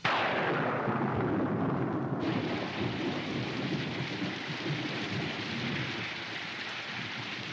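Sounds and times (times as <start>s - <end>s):
deep rumble of thunder: 0.1s - 6.4s
heavy steady rain downpour: 1.3s - 7.5s.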